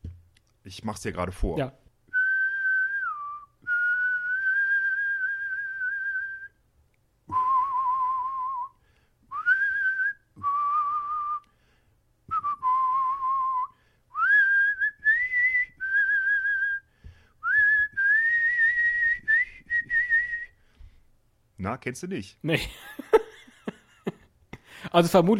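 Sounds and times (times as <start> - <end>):
speech: 0.7 - 1.8, 21.8 - 23.1, 24.9 - 25.3
person whistling a western film theme melody: 2.1 - 6.6, 7.3 - 11.5, 12.3 - 20.6
laughter: 22.5 - 24.3.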